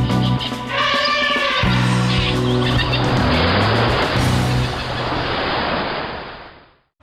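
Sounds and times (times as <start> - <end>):
shrill tire squeals: 0.2 - 5.1
harsh skidding rush: 1.9 - 6.0
loud continuous car noise: 2.1 - 5.4.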